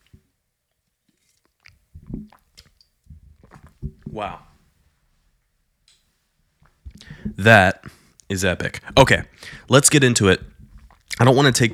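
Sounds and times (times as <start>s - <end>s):
person sipping a drink with soft slurps and gulps: 1.1s - 4.6s, 6.6s - 9.7s, 10.4s - 11.7s
speech: 4.2s - 4.5s, 7.4s - 10.5s, 11.2s - 11.7s.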